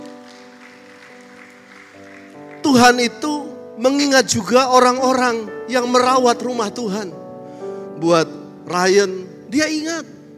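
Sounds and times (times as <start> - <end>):
audience at a church worship service applauding: 0.0 - 3.1
speech: 2.7 - 7.2, 8.0 - 10.1.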